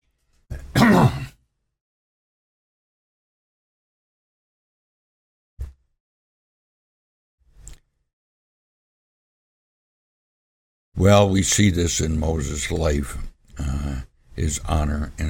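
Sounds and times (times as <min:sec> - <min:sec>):
man clearing his throat: 0:00.5 - 0:01.4
speech: 0:11.0 - 0:15.2.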